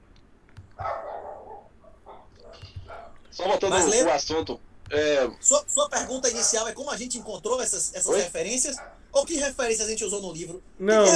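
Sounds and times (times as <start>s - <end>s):
several neighbours' dogs barking in a residential area: 0.7s - 3.9s, 5.9s - 9.2s
speech: 3.4s - 11.1s.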